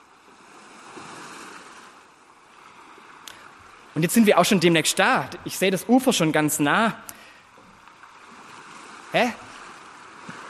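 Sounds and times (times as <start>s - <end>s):
faint wind: 0.0s - 10.4s
water lapping and splashing against a boat hull: 0.0s - 10.4s
speech: 4.0s - 7.2s, 9.1s - 9.4s.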